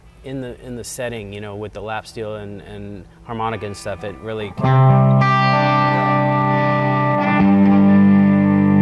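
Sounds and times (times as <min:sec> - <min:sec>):
speech: 0:00.2 - 0:05.8
droning instrument tone through reverb and tremolo effect: 0:03.3 - 0:08.8.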